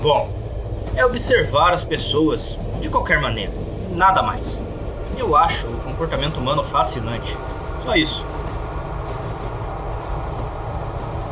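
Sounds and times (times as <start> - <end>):
speech: 0.0 - 8.4
train rumbling on rails heard from inside a train carriage: 0.0 - 11.3.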